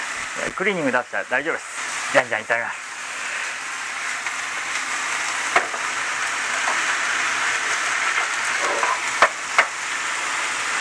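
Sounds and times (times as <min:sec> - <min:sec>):
meat and peppers sizzling while stir-frying in a hot pan: 0:00.0 - 0:10.8
speech: 0:00.4 - 0:02.8
utensil clanking against a pan: 0:08.0 - 0:09.8.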